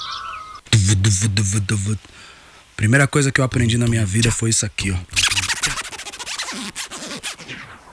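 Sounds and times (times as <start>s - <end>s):
speech: 0.9s - 5.8s
jacket zipper yanked rapidly back and forth: 5.2s - 7.8s.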